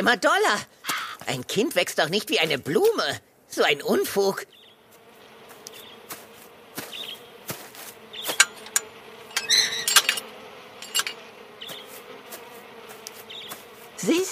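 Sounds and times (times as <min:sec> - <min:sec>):
speech: 0:00.0 - 0:04.6, 0:14.0 - 0:14.3
bees buzzing: 0:03.7 - 0:14.3
high chirps: 0:09.3 - 0:10.1.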